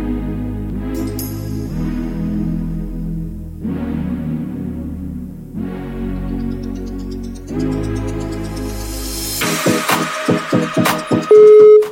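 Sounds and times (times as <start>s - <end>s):
music: 0.0s - 11.9s
outgoing call telephone ringing tone: 11.3s - 11.9s
telephone dialing beeps: 11.3s - 11.9s.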